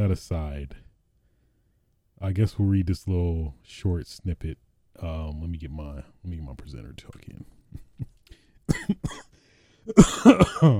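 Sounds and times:
speech: 0.0s - 0.8s, 2.2s - 8.1s, 8.7s - 10.7s
loud coughs: 8.7s - 9.3s, 9.9s - 10.7s
throat clearing: 8.7s - 9.3s, 9.9s - 10.7s.

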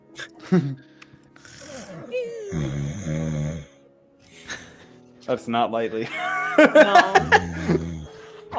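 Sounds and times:
speech: 0.2s - 0.9s, 5.3s - 7.8s
voice imitating little snores of someone sleeping: 1.4s - 3.7s, 7.2s - 8.2s
laughter: 6.0s - 8.2s.

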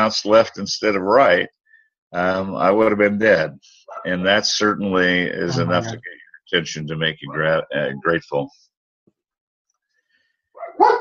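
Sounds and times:
speech: 0.0s - 8.6s
dog barking: 3.9s - 4.2s, 7.2s - 7.5s, 10.5s - 11.0s.

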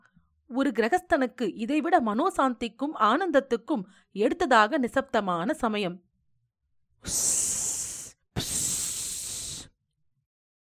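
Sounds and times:
speech: 0.5s - 6.1s, 7.0s - 7.8s
fireworks hissing as they are set off: 7.1s - 9.7s.

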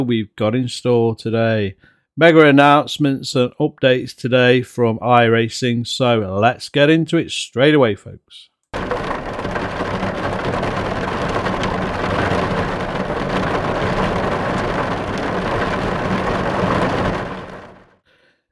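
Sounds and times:
speech: 0.0s - 9.0s
low rumbling under heavy rain: 8.8s - 17.9s
heavy rain drumming on a car windscreen: 8.8s - 18.0s.

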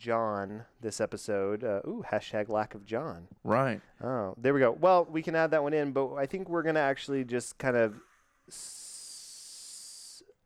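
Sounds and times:
speech: 0.0s - 8.8s
person hissing like a snake: 7.8s - 10.4s.

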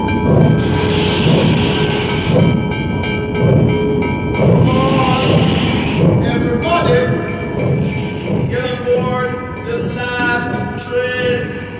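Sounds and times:
train wheels clattering on track: 0.0s - 11.7s.

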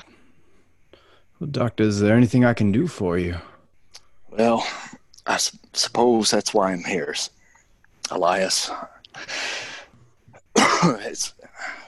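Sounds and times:
speech: 1.4s - 3.5s, 4.3s - 7.4s, 8.1s - 9.6s, 10.8s - 11.7s
harsh dry coughs: 10.5s - 11.3s.

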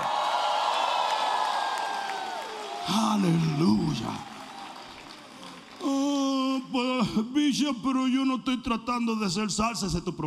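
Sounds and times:
audience shouting and cheering: 0.0s - 5.8s
speech: 2.9s - 4.3s, 6.7s - 10.2s.

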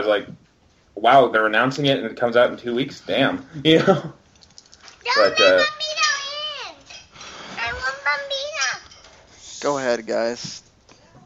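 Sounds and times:
speech: 0.0s - 0.4s, 1.0s - 4.2s, 5.0s - 5.9s, 9.6s - 11.2s
laughter: 3.6s - 4.2s
faint clinks: 4.3s - 5.5s
young child talking loudly in high-pitched sing-song bursts: 5.0s - 6.9s, 7.6s - 8.9s.

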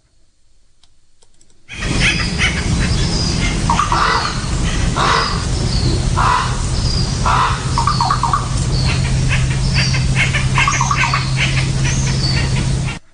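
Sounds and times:
steady outdoor hum: 0.0s - 13.1s
crows cawing in the morning: 1.7s - 12.6s
woodpecker tapping: 7.2s - 12.2s.

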